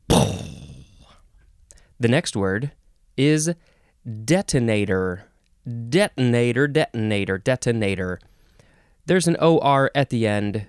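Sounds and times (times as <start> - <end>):
voice imitating car engine combustion: 0.0 - 1.1
speech: 2.0 - 8.3, 9.1 - 10.6.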